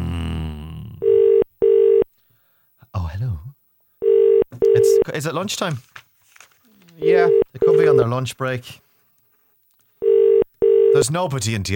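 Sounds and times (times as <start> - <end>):
telephone ringback tone on a line to Westmeath, Ireland: 1.0 - 2.1, 4.0 - 5.0, 7.0 - 8.0, 10.0 - 11.0
speech: 5.1 - 6.0, 7.8 - 8.8, 11.0 - 11.7.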